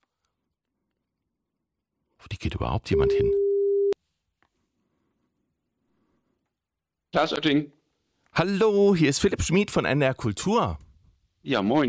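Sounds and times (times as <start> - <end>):
speech: 2.2 - 3.4, 7.1 - 7.8, 8.4 - 10.8, 11.4 - 11.8
telephone ringing tone on an outgoing call: 3.0 - 4.0.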